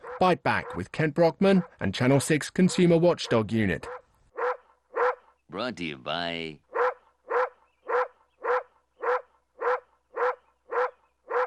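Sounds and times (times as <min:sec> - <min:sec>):
dog barking in a TV commercial: 0:00.0 - 0:00.9, 0:02.6 - 0:05.3, 0:06.7 - 0:11.4
speech: 0:00.2 - 0:04.0, 0:05.5 - 0:06.6.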